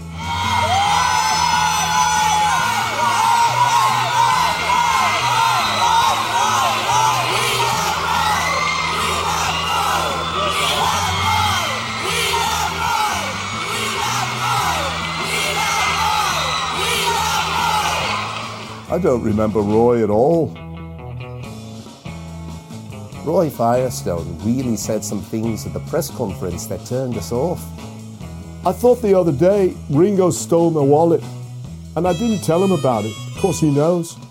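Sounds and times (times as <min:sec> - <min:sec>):
large crowd in New York City shouting and cheering: 0:00.0 - 0:20.3, 0:32.0 - 0:34.2
speech: 0:19.0 - 0:20.6, 0:23.2 - 0:27.9, 0:28.6 - 0:31.4, 0:32.0 - 0:34.2.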